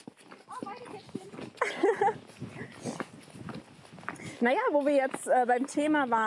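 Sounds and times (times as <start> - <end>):
pony hooves walking on soft ground: 0.0 - 6.2
person laughing: 1.6 - 2.2
speech: 4.4 - 6.2.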